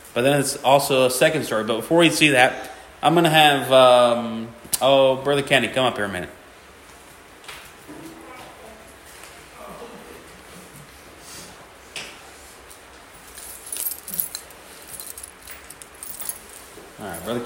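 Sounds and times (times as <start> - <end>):
room noise: 0.0 - 17.4
speech: 0.2 - 6.4
keys jingling while handled: 13.2 - 17.4.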